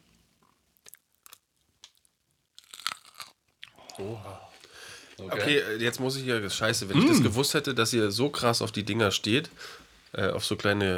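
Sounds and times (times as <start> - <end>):
chewing a pickle: 0.4 - 5.2
teeth crunching into a pickle: 0.8 - 3.8
speech: 4.0 - 4.5, 5.2 - 10.9.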